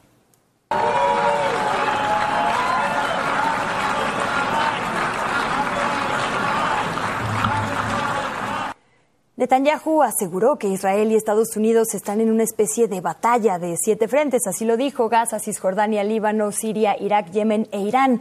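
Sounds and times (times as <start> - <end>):
large indoor crowd jeering, shouting and chanting: 0.7 - 8.8
speech: 9.4 - 18.2.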